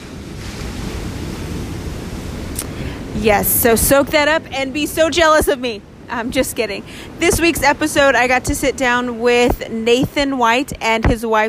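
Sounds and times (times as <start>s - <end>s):
ocean surf washing onto a beach at night: 0.0s - 11.4s
wind noise: 0.0s - 11.4s
speech: 3.2s - 11.4s.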